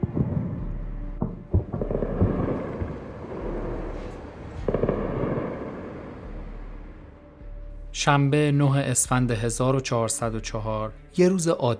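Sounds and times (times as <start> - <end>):
booming explosions in the city of Tehran during attacks: 0.0 - 6.3
constant rumble of wind and noise: 0.0 - 7.9
speech: 8.0 - 11.7.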